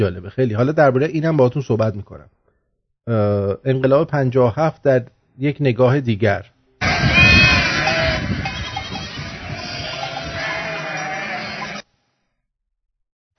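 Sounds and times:
speech: 0.0 - 2.4, 3.0 - 6.5
sheep bleating: 6.8 - 11.8.

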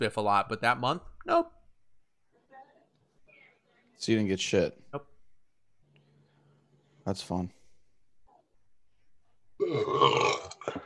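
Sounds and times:
speech: 0.0 - 1.6, 4.0 - 5.1, 7.1 - 7.6, 9.6 - 10.8
loud drawn-out burp with gurgling tail: 9.6 - 10.8.

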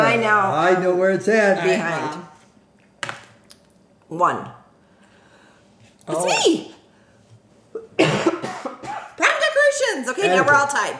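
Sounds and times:
speech: 0.2 - 2.3, 4.1 - 4.6, 6.1 - 6.7, 7.8 - 10.9
person coughing: 7.8 - 9.2.

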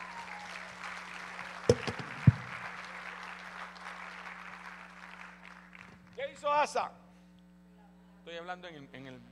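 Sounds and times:
audience applauding: 0.0 - 6.2
sharp loud claps: 0.0 - 6.2
speech: 1.7 - 2.0, 6.4 - 7.0, 8.3 - 9.3.

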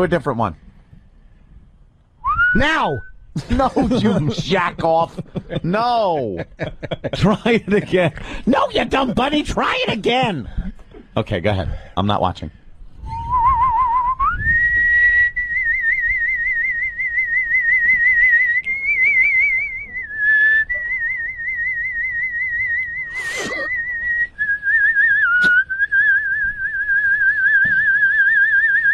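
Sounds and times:
speech: 0.0 - 0.6, 2.5 - 12.6
person whistling a long steady tune: 2.2 - 3.2, 13.1 - 28.9
laughter: 3.4 - 10.5.

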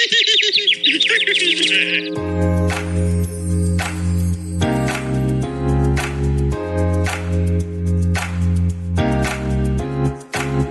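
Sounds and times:
bird chirping: 0.0 - 2.2
rhythmic music with deep beat: 0.8 - 10.6.

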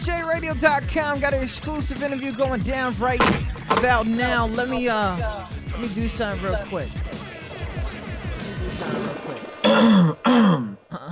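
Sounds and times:
speech: 0.0 - 7.1
busy jumbled sound: 0.0 - 9.8
man clearing his throat: 9.6 - 11.1.

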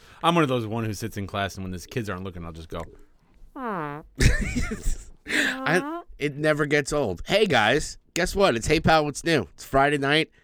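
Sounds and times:
speech: 0.2 - 10.4
person humming a short tone: 3.6 - 4.2, 5.3 - 6.1
person blowing a raspberry imitating a fart: 3.6 - 6.1.

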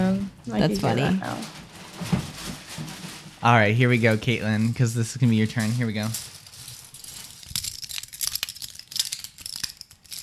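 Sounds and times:
speech: 0.1 - 2.2, 3.4 - 6.3
plastic forks, knives or spoons being handled: 7.4 - 10.2.

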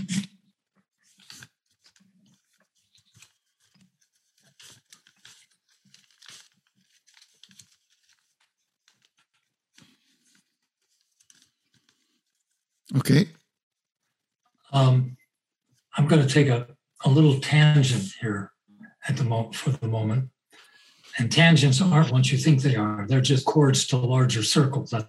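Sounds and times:
paper triangle being folded and creased: 0.6 - 12.8, 13.5 - 14.4
speech: 12.9 - 13.4, 16.1 - 20.4, 21.1 - 25.0.

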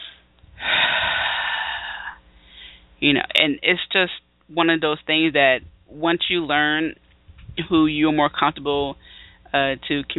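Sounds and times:
deep breath in: 0.0 - 2.9, 9.0 - 9.4
speech: 3.0 - 7.0, 7.6 - 10.1.

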